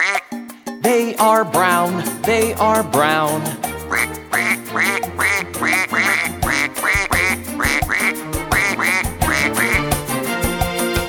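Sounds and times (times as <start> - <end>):
duck on a farm quacking: 0.0 - 0.3, 3.1 - 10.3
speech: 0.8 - 6.0.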